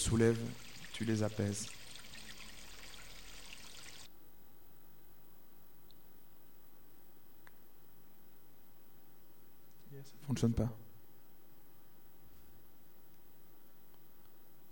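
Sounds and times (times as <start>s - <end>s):
toilet flushing: 0.0s - 4.1s
speech: 0.1s - 1.8s, 10.0s - 10.8s.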